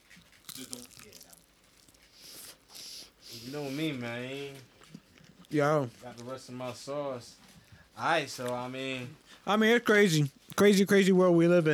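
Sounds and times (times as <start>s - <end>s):
crunchy bite into a chicken drumstick: 0.0s - 2.6s
softer crinkling chews: 0.0s - 3.2s, 4.6s - 6.4s
speech: 0.6s - 1.4s, 3.4s - 4.7s, 5.5s - 7.4s, 8.0s - 11.7s.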